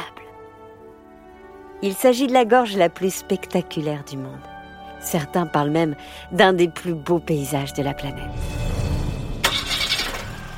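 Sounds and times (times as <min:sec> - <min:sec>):
speech: 0:01.8 - 0:08.6
camper van engine starting: 0:09.3 - 0:10.5.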